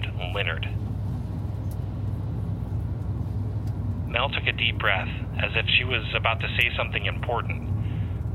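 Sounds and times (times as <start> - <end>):
bus engine and road rumble on a highway: 0.0 - 8.3
speech: 0.4 - 0.8, 4.1 - 7.7.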